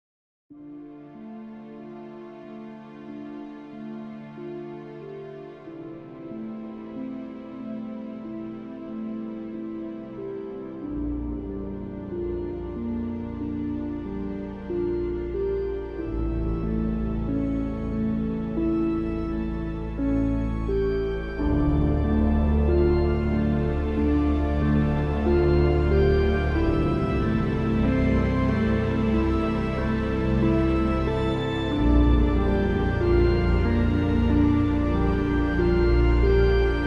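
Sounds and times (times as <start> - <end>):
organ melody: 10.9 - 36.8.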